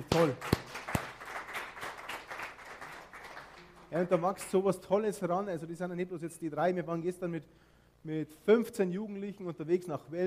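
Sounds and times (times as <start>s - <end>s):
crowd applauding a youth worship group: 0.0s - 4.3s
sharp loud claps: 0.0s - 4.6s
speech: 0.1s - 0.6s, 3.9s - 10.2s.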